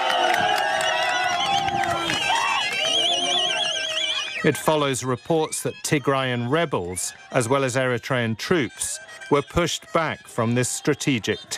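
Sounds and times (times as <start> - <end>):
crowd of residents cheering and shouting in the streets of Adigrat, Ethiopia: 0.0 - 11.5
high ululating calls from residents in Adigrat, Ethiopia: 0.9 - 4.7
speech: 4.4 - 11.5.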